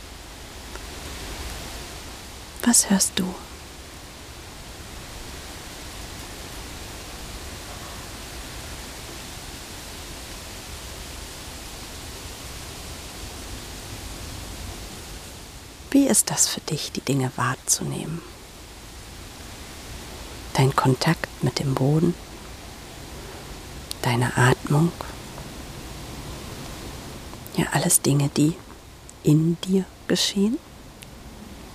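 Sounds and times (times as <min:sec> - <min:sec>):
wind blowing through a forest: 0:00.0 - 0:31.7
speech: 0:02.7 - 0:03.5, 0:16.1 - 0:18.4, 0:20.6 - 0:22.3, 0:24.0 - 0:25.2, 0:27.6 - 0:28.6, 0:29.2 - 0:30.7.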